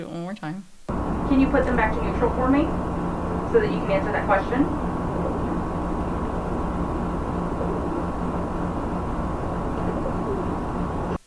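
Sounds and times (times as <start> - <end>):
speech: 0.0 - 4.9
dense noise: 0.0 - 11.2
bird calling outdoors: 0.9 - 11.2.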